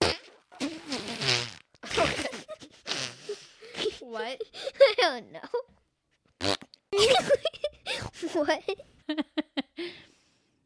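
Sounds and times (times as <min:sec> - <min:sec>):
voice imitating farting with sputtering buzzing mouth noises: 0:00.0 - 0:03.6, 0:06.4 - 0:07.2
speech: 0:04.2 - 0:05.7, 0:08.4 - 0:09.3.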